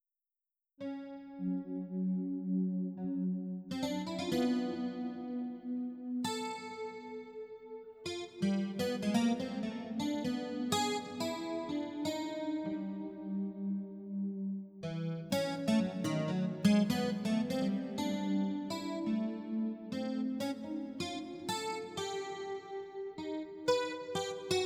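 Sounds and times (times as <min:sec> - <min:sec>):
guitar steel pad: 0:00.8 - 0:24.6.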